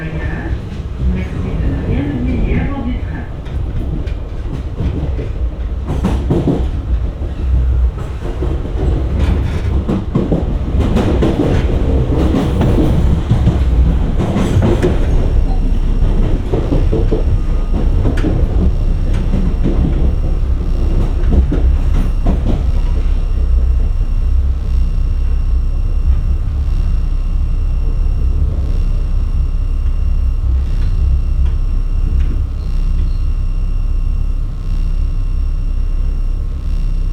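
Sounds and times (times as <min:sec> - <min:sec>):
train wheels clacking on rails: 0:00.0 - 0:24.0
loud continuous train rumble: 0:00.0 - 0:37.1.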